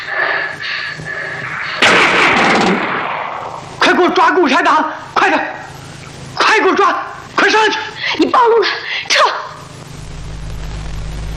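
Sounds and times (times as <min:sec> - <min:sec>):
noise: 0:00.0 - 0:11.3
gunfire in a tense armed confrontation: 0:01.5 - 0:03.8
speech: 0:04.4 - 0:05.5, 0:06.6 - 0:09.3.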